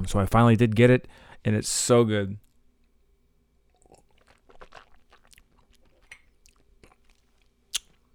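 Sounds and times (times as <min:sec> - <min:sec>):
speech: 0:00.0 - 0:02.4
mouth smacks and clicks: 0:03.7 - 0:08.0.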